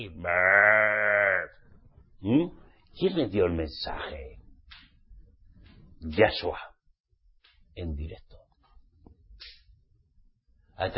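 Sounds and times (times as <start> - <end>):
speech: 0.0 - 0.6, 2.2 - 4.3, 6.0 - 6.7, 7.8 - 8.3, 10.8 - 10.9
sheep bleating: 0.0 - 1.6.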